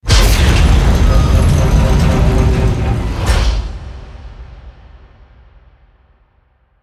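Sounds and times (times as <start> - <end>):
airlock opening: 0.1 - 4.2.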